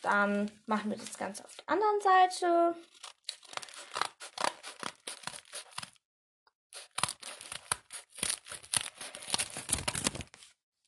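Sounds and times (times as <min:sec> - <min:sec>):
speech: 0:00.0 - 0:03.1
scissors snipping zigzag points into a plastic bag: 0:02.9 - 0:06.0, 0:06.8 - 0:10.4.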